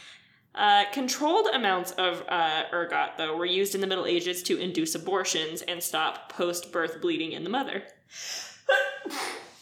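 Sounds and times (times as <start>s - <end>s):
speech: 0.6s - 9.3s
person sneezing: 9.0s - 9.6s.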